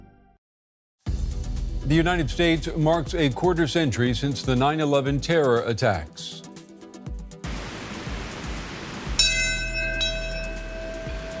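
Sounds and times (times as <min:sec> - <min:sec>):
speech: 0:01.8 - 0:06.5
steady hiss of outdoor noise: 0:07.5 - 0:11.3
single heavy memorial bell ringing at Ground Zero: 0:09.2 - 0:11.3.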